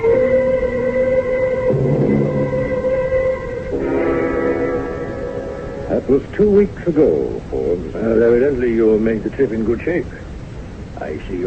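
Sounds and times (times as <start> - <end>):
passenger train sustained whistle tones: 0.0 - 5.9
speech: 6.1 - 10.2, 11.0 - 11.4.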